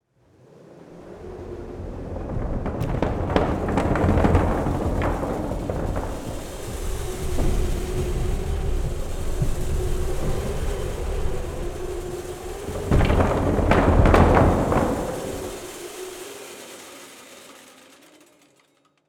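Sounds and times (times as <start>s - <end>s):
weather machines in a weather museum: 0.7s - 18.6s.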